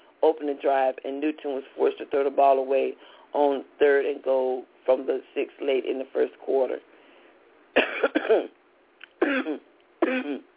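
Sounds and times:
speech: 0.2s - 6.9s, 7.8s - 8.6s, 9.2s - 10.5s
person having a harsh coughing fit: 7.8s - 8.6s, 9.2s - 10.5s.

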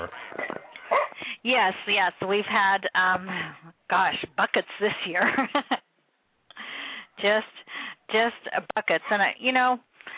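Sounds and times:
16-year-old dog barking: 0.5s - 1.2s
speech: 1.4s - 5.8s, 7.2s - 9.9s.

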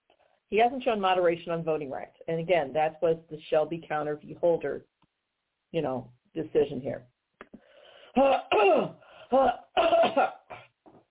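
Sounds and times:
speech: 0.5s - 4.9s, 5.7s - 7.1s, 8.2s - 10.6s
person coughing harshly: 8.2s - 10.8s.

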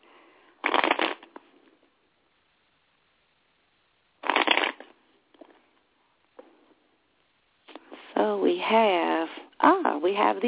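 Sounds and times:
deck of tarot cards being shuffled: 0.6s - 1.4s, 4.2s - 5.6s
speech: 8.2s - 10.4s.

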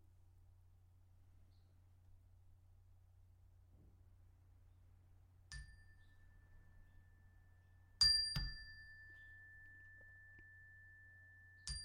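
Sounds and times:
faint low hum: 0.0s - 11.8s
small meditation bell struck: 5.6s - 11.8s.

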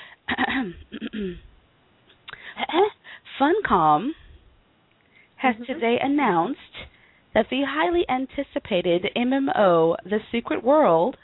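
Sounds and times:
person clearing throat: 0.3s - 1.6s
speech: 0.6s - 1.5s, 2.7s - 4.2s, 5.4s - 11.2s.

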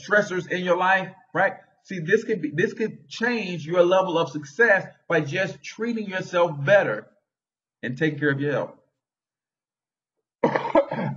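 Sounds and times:
speech: 0.0s - 7.1s, 7.8s - 8.8s
person coughing: 10.4s - 11.1s.

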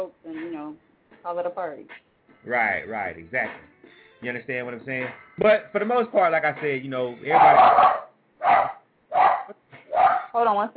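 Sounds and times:
speech: 1.2s - 8.6s, 10.4s - 10.7s
pit bull dog barking: 7.3s - 10.4s.

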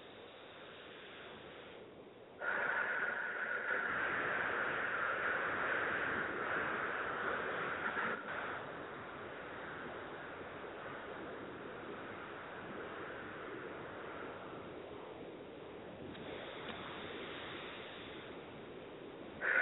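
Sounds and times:
slow deep breathing during a mindfulness exercise: 0.2s - 14.6s, 16.2s - 18.7s.

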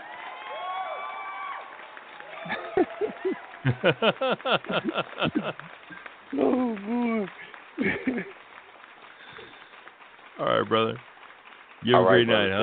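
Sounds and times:
crowd applause and cheering as a clap-out send-off: 0.0s - 12.6s
rhythmic clapping bursts: 1.6s - 12.6s
laughter: 2.3s - 8.4s
speech: 2.4s - 8.4s, 10.4s - 11.1s, 11.8s - 12.6s.

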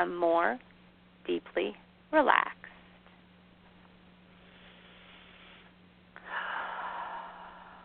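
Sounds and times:
speech: 0.0s - 0.7s, 1.3s - 2.6s
low steady hum: 0.0s - 7.8s
deep breath drawn in during a guided relaxation: 4.4s - 7.8s.

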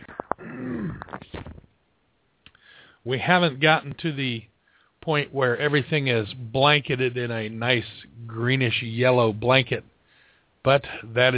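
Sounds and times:
person clearing throat troubled by pollen: 0.1s - 1.6s
speech: 3.0s - 9.9s, 10.6s - 11.3s.

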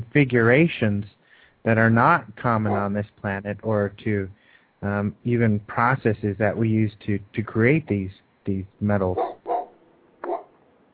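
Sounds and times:
low steady hiss: 0.0s - 10.9s
speech: 0.1s - 9.3s
big dog barking: 2.6s - 3.0s, 9.2s - 10.6s.

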